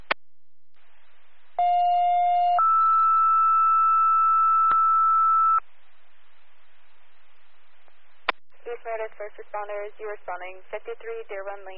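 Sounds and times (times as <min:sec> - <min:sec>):
two-tone dispatch alert tones for first responders: 0:01.6 - 0:05.6
speech: 0:09.2 - 0:11.7.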